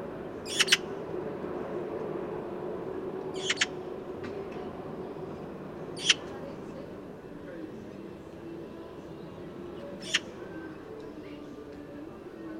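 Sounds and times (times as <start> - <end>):
constant low hum of background noise: 0.0 - 12.5
Eurasian magpie Pica pica uttering harsh scratchy chack notes: 0.5 - 0.8, 3.4 - 3.7, 6.0 - 6.2.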